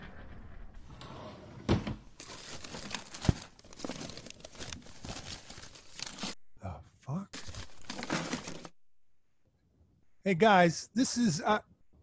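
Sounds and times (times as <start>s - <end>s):
desk drawer sliding open: 0.1s - 2.1s
rustling and shuffling of papers and objects in a desk drawer: 1.7s - 6.4s, 7.3s - 8.8s
speech: 10.3s - 11.7s.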